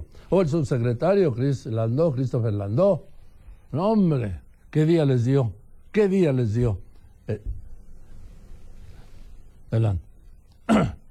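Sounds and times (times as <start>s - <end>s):
speech: 0.3s - 3.1s, 3.7s - 7.6s, 9.7s - 10.1s, 10.7s - 11.0s
person sneezing: 10.6s - 11.1s.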